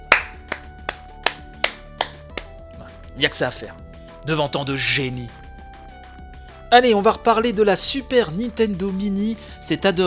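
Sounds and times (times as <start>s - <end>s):
person clapping hands: 0.0s - 2.9s
speech: 3.2s - 5.4s, 6.7s - 10.0s.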